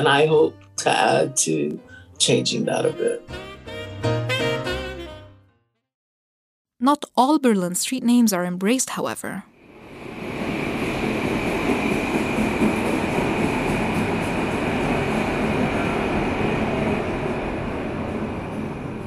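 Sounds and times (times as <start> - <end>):
speech: 0.0 - 4.2, 6.9 - 9.5
subway train rumbling at Onkel Tom's Hütte subway stop in Berlin: 9.6 - 19.0.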